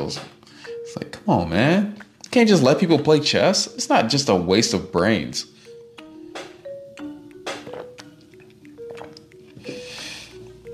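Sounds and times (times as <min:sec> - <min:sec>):
speech: 0:00.0 - 0:00.3, 0:00.9 - 0:05.6
person drinking water with gulps and swallows: 0:07.5 - 0:10.6.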